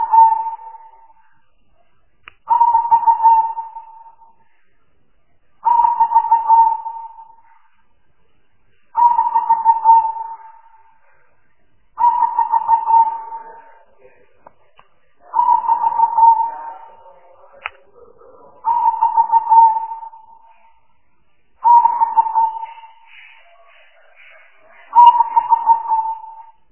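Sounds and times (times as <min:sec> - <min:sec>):
spotted dove cooing: 0:00.0 - 0:01.2, 0:02.5 - 0:04.4, 0:05.6 - 0:07.6, 0:08.9 - 0:11.0, 0:12.0 - 0:14.2, 0:15.2 - 0:20.8, 0:21.6 - 0:26.6.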